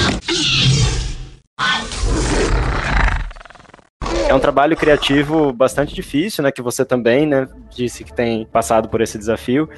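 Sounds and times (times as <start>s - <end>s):
loud harsh dinosaur roar sound effect with shrieking overtones: 0.2s - 5.3s
speech: 4.3s - 9.7s.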